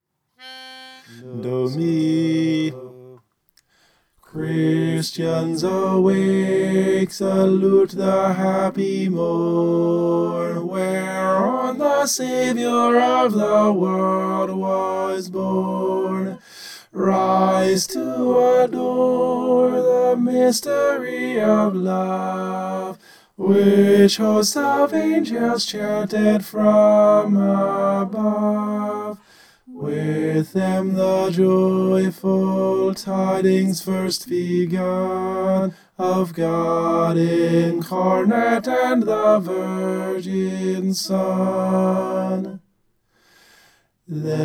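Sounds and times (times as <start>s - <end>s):
tenor singing a Christmas hymn: 0.4s - 3.2s, 4.2s - 42.7s, 44.1s - 44.4s.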